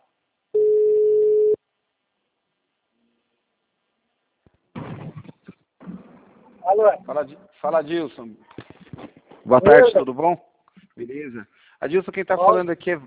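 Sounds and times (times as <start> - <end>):
telephone ringing tone: 0.6 - 1.6
speech: 6.7 - 8.6, 9.5 - 13.0.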